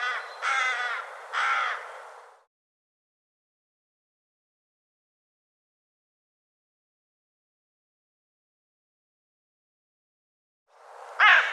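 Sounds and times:
bird cawing: 0.0s - 2.0s, 11.2s - 11.5s.

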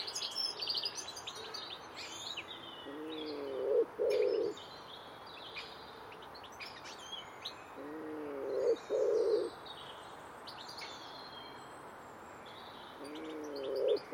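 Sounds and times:
smaller birds twittering and whistling: 0.0s - 14.1s
common wood pigeon song of deep muffled coos: 2.9s - 4.5s, 7.8s - 9.5s, 13.0s - 14.1s.

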